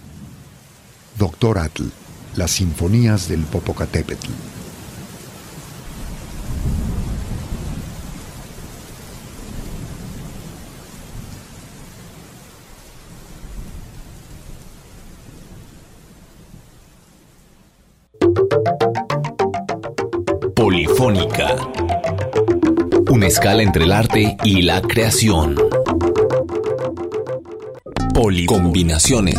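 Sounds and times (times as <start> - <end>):
dense steady heavy rain downpour: 0.0 - 18.1
speech: 1.2 - 4.6, 23.3 - 26.1, 28.2 - 29.3
bright ringing musical tone: 18.2 - 29.3.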